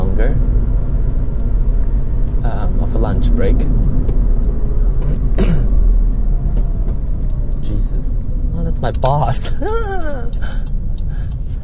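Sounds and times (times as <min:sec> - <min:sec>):
road rumble from inside a moving car: 0:00.0 - 0:11.6
speech: 0:00.2 - 0:00.4, 0:09.0 - 0:10.7
person clearing throat or coughing: 0:05.4 - 0:05.8.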